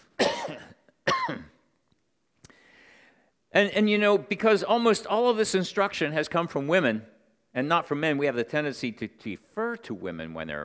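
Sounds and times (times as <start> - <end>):
person coughing from a tickle in the throat: 0.2 - 1.6
speech: 3.6 - 10.6.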